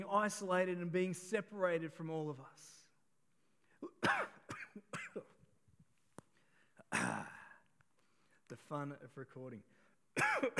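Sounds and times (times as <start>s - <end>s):
speech: 0.0s - 2.8s, 8.5s - 10.5s
person coughing after choking on saliva: 3.8s - 5.4s, 6.9s - 7.6s, 10.2s - 10.5s.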